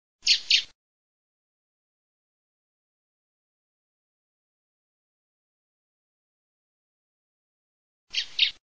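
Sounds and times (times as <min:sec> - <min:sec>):
female blackbird calling: 0:00.2 - 0:00.7, 0:08.1 - 0:08.6.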